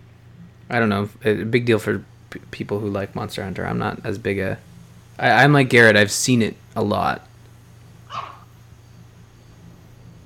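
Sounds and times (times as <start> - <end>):
steady low hum: 0.0 - 10.2
speech: 0.7 - 7.3
dog barking: 8.1 - 8.5.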